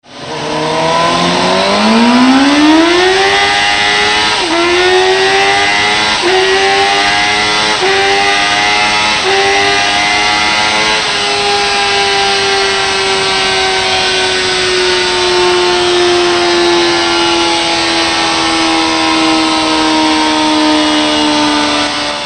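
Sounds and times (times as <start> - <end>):
Suzuki GSXR750 motorcycle engine: 0.0 - 22.2.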